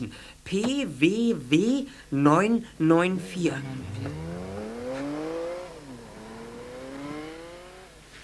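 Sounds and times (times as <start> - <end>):
speech: 0.0 - 4.3
car engine revving as a woman drives off: 3.2 - 8.2.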